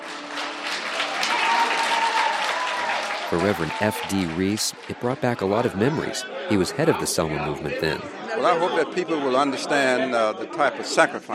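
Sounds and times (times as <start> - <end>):
cinema audience cheering and applauding in Selma: 0.0 - 7.6
speech: 3.3 - 11.3.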